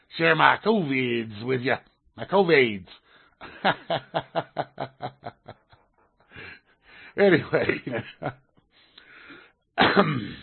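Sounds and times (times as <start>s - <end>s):
speech: 0.1s - 5.6s, 7.2s - 8.4s, 9.8s - 10.4s
laughter: 3.4s - 6.6s, 7.2s - 8.4s
person coughing: 9.8s - 10.4s.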